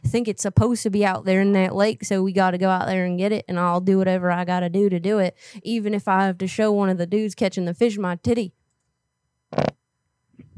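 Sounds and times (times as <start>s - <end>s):
speech: 0.1s - 8.6s, 9.5s - 9.8s
fart: 9.5s - 9.8s.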